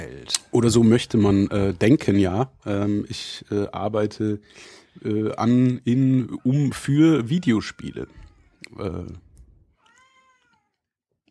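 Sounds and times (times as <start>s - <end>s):
speech: 0.6s - 9.2s
cat meowing: 6.3s - 10.9s.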